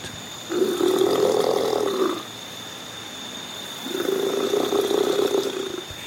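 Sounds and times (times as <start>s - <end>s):
faint hum: 0.0s - 6.0s
male crocodile rumbling hissing mating call: 0.5s - 2.3s, 3.8s - 6.0s.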